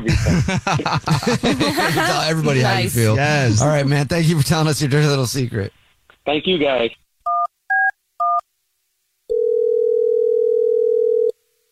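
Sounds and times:
laughter: 0.0 - 3.2
speech: 0.1 - 7.0
ringback tone of an outgoing phone call: 9.3 - 11.4.

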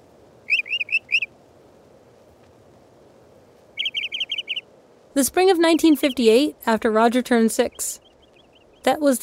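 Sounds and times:
faint hiss: 0.0 - 9.2
mockingbird singing a repeating medley: 0.5 - 1.3, 3.8 - 9.2
speech: 5.2 - 8.0, 8.8 - 9.2.

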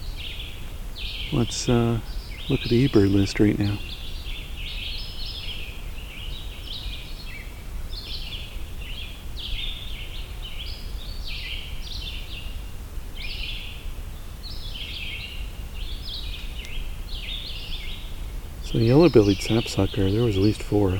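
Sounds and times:
constant low rumble of outdoor noise: 0.0 - 20.9
vireos singing whistled phrases: 0.0 - 20.9
speech: 1.3 - 3.9, 19.0 - 20.9.

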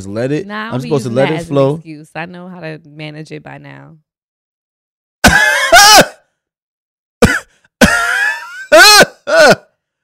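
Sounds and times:
speech: 0.0 - 4.0, 9.3 - 9.6
person coughing in harsh raspy bursts: 5.2 - 6.2, 7.2 - 9.7.

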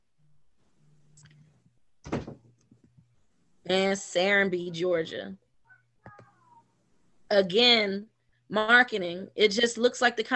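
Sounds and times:
door swinging shut with a solid thud: 2.0 - 2.5
speech: 3.7 - 5.4, 7.3 - 10.3.

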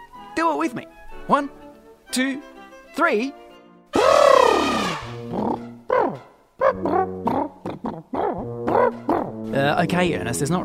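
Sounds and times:
speech: 0.6 - 3.4, 8.4 - 10.6
elephant trumpeting: 3.9 - 7.6
elephant grunting and rumbling calls: 4.0 - 9.4.

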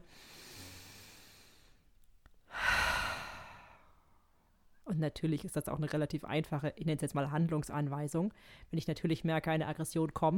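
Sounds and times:
deep breath in and out: 0.0 - 1.9, 2.5 - 4.3, 8.4 - 8.7
speech: 4.9 - 10.3.

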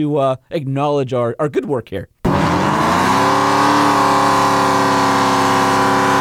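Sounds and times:
speech: 0.0 - 2.7
pickup truck engine revving during a burnout: 2.2 - 6.1
pickup truck tires spinning in a burnout: 2.2 - 6.1.

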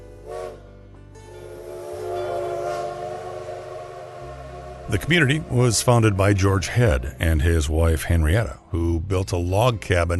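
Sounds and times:
long train horn blast: 0.2 - 6.2
train rumbling past: 1.2 - 7.8
speech: 4.9 - 10.1.

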